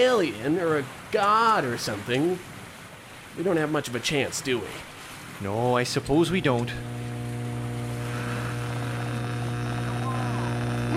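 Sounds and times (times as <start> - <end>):
speech: 0.0 - 2.6, 3.4 - 7.1
steady electrical hum with strong low tonal bands: 5.8 - 10.9
faint warbling whistling radio signal tones picked up by the metal of boats: 7.9 - 10.9.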